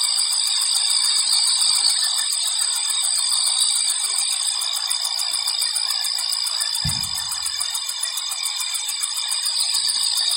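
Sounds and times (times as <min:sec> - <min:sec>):
cicadas droning at night in the countryside: 0:00.0 - 0:10.3
brief low thump: 0:06.8 - 0:07.6.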